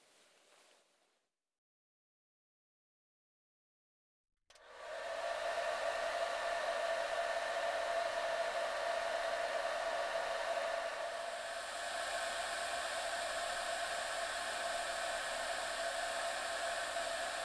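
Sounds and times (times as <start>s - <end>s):
hair dryer drying a client's hair: 4.5s - 17.4s.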